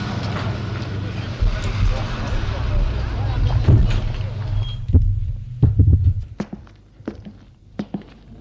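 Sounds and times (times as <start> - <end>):
car engine rumbling low: 0.1 - 6.4.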